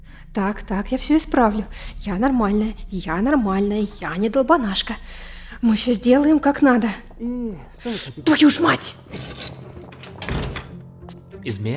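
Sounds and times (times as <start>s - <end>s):
speech: 0.2s - 9.6s, 11.4s - 11.7s
door lock clacking: 9.0s - 10.9s
back room door pushed shut with a dull thump: 9.1s - 10.8s.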